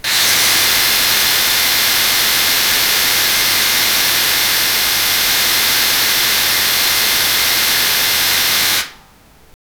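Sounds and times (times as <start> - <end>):
electric shock: 0.0 - 9.0.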